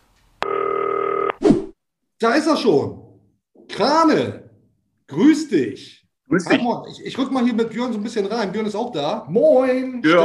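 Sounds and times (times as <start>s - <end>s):
steady electronic telephone tone from a green telephone placing a call: 0.4s - 1.4s
speech: 2.2s - 3.0s, 3.7s - 4.4s, 5.1s - 10.2s.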